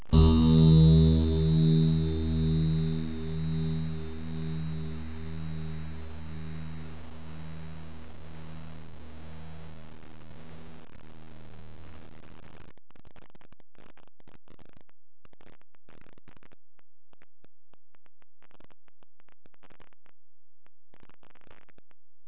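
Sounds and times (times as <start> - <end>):
mandolin: 0.0 - 7.9.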